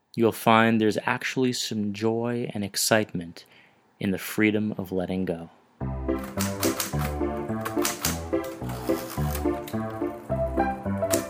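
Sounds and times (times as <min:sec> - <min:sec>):
speech: 0:00.2 - 0:06.7
rhythmic musical backing with deep repeating tones: 0:05.8 - 0:11.2
typewriter keys clacking: 0:06.2 - 0:10.3, 0:10.9 - 0:11.2.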